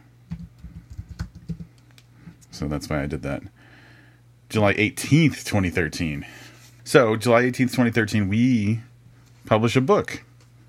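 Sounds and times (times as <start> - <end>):
typing on a computer keyboard: 0.3 - 1.8
speech: 2.6 - 3.6, 4.5 - 8.9, 9.5 - 10.3.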